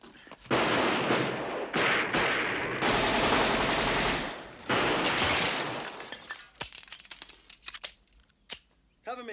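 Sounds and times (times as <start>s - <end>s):
machine gun fire: 0.5s - 5.8s.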